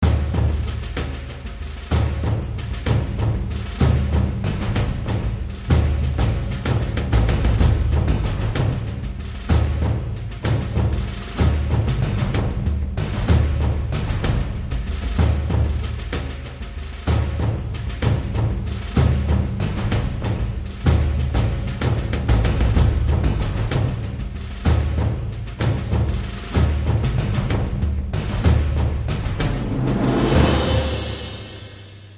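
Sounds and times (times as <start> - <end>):
big drums: 0.0 - 32.1
impact sting: 29.5 - 32.1.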